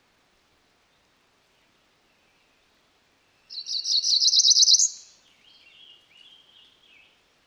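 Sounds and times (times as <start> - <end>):
female Cerulean warbler high buzzy trilling phrase: 3.5 - 6.8.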